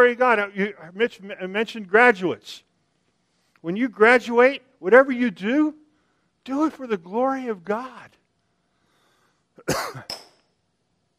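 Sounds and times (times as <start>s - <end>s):
speech: 0.0s - 2.7s, 3.6s - 5.8s, 6.4s - 8.2s, 9.6s - 10.3s
person coughing: 9.6s - 10.2s.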